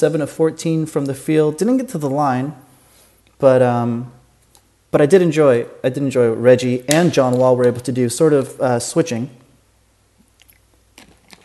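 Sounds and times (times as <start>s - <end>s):
speech: 0.0s - 2.6s, 3.4s - 4.2s, 4.9s - 9.4s
person sipping water: 10.2s - 11.4s.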